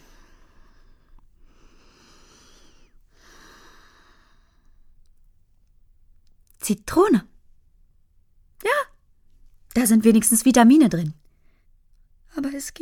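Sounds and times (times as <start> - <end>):
deep slow breathing: 0.0 - 4.9
speech: 6.7 - 7.3, 9.8 - 11.2, 12.6 - 12.8.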